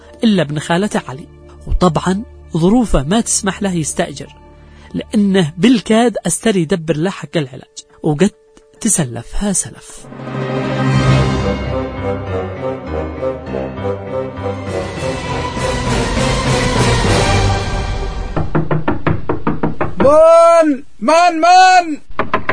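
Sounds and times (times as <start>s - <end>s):
music: 0.0s - 20.0s
speech: 0.2s - 10.7s, 20.0s - 22.1s
knocking on a door: 18.2s - 20.2s, 22.2s - 22.5s.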